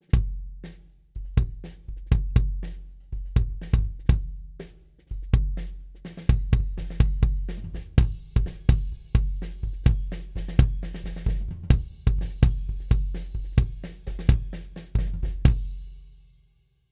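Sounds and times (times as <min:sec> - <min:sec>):
kick drum miked inside: 0:00.0 - 0:15.8.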